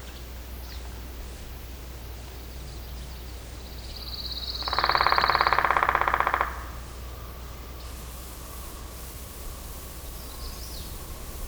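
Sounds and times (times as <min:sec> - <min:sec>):
woodpecker rattling: 0:03.6 - 0:11.4.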